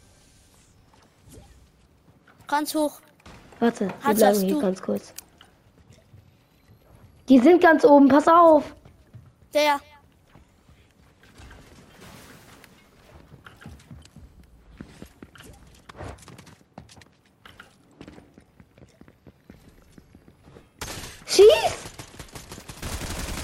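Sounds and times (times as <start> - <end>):
speech: 2.5 - 5.2, 7.3 - 8.8, 9.5 - 9.9
gunfire from a pistol-only shooter video game: 20.8 - 23.4.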